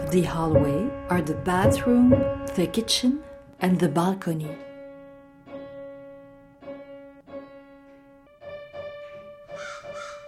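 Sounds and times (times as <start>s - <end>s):
speech: 0.1s - 4.7s
crow cawing: 9.5s - 10.2s.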